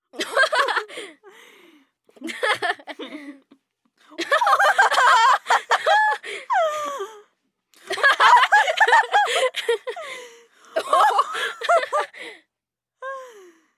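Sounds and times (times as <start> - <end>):
woman laughing: 2.2 - 3.6, 4.2 - 7.0, 7.9 - 10.1, 10.8 - 12.2.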